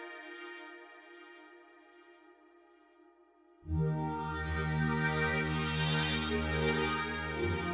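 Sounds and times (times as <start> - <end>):
OB fat synth pad: 3.7 - 7.7.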